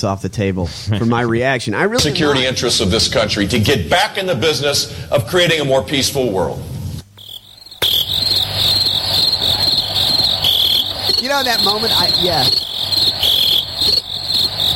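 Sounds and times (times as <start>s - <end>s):
speech: 0.0s - 6.8s, 11.3s - 12.6s
dense chorus of crickets chirping: 7.1s - 14.7s.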